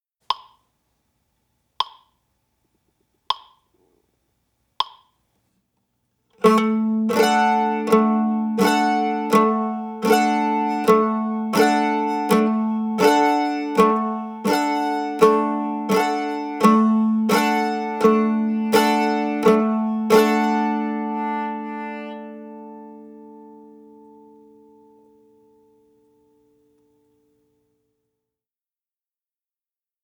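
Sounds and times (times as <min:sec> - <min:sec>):
guitar strumming: 0:06.4 - 0:26.2.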